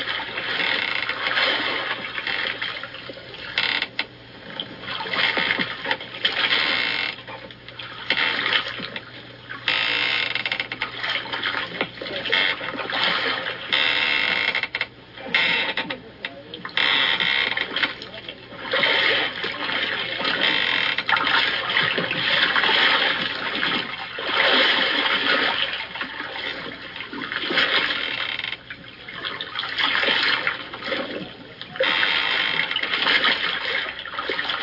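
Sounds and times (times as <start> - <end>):
faint creak of wood and metal with each oar stroke: 0.0 - 2.7, 3.5 - 11.1, 11.8 - 16.1, 16.7 - 24.1, 27.5 - 28.8, 29.9 - 33.5
oars dipping and pulling through water while rowing a boat: 0.0 - 34.6.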